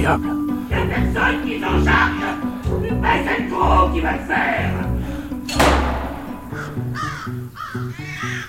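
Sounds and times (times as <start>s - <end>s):
speech: 0.0s - 5.8s, 6.6s - 8.4s
sharp thump: 5.5s - 7.0s
crows cawing: 6.2s - 8.4s.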